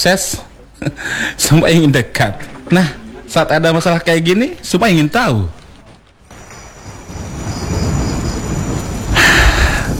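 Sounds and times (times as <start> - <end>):
speech: 0.0 - 5.6
steady rain falling: 2.4 - 9.9.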